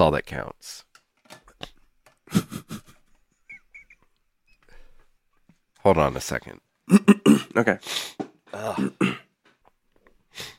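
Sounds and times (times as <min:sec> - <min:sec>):
speech: 0:00.0 - 0:00.9, 0:05.8 - 0:09.2
gruff throat clearing into a microphone: 0:06.9 - 0:07.8, 0:08.5 - 0:09.4.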